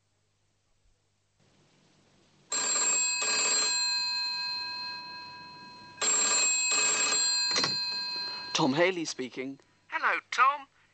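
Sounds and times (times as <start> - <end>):
telephone electric bell ringing: 2.5 - 8.9
speech: 8.6 - 10.7.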